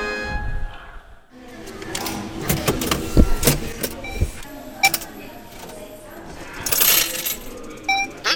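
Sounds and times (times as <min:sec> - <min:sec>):
automatic betting payout machine whirring and clunking: 0:01.4 - 0:07.9
coins clattering and jingling into a tray: 0:06.6 - 0:07.7.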